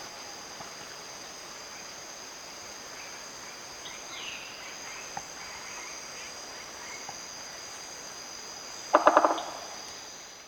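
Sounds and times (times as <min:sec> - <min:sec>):
steady high insect hum: 0:00.0 - 0:10.4
Crimson-crested woodpecker drumming: 0:08.9 - 0:09.8.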